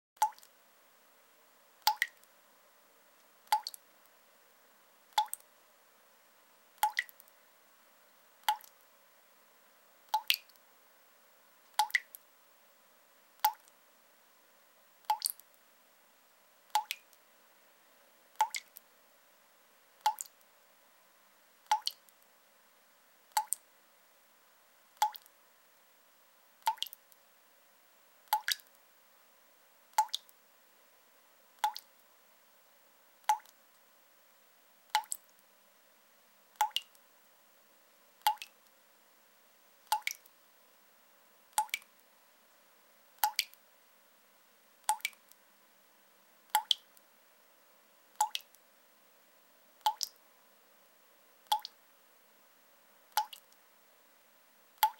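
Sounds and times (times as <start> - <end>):
water dripping in a sink or tub: 0.2 - 0.6, 1.8 - 2.3, 3.2 - 3.8, 5.1 - 5.5, 6.8 - 7.4, 8.4 - 8.9, 10.1 - 10.7, 11.7 - 12.2, 13.4 - 13.8, 15.0 - 15.6, 16.7 - 17.2, 18.3 - 18.9, 20.0 - 20.5, 21.6 - 22.3, 23.3 - 23.7, 25.0 - 25.4, 26.6 - 27.2, 28.2 - 28.8, 29.9 - 30.4, 31.6 - 32.1, 33.2 - 33.8, 34.9 - 35.5, 36.6 - 37.0, 38.2 - 38.7, 39.8 - 40.4, 41.5 - 42.1, 43.2 - 43.6, 44.8 - 45.4, 46.5 - 47.0, 48.1 - 48.6, 49.8 - 50.2, 51.4 - 51.8, 53.1 - 53.6, 54.8 - 54.9.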